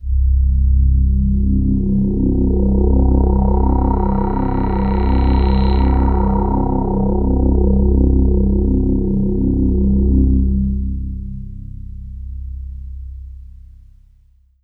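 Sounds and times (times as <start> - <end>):
Kawai K3 synthesizer sweep pad in C1: 0.0 - 12.7.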